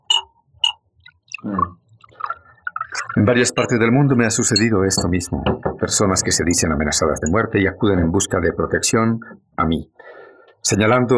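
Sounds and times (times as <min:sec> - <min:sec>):
water pouring from a glass carafe into a glass: 0:00.1 - 0:03.8
speech: 0:01.4 - 0:01.8, 0:03.2 - 0:10.0, 0:10.6 - 0:11.1
bright glass clinks: 0:04.5 - 0:05.2.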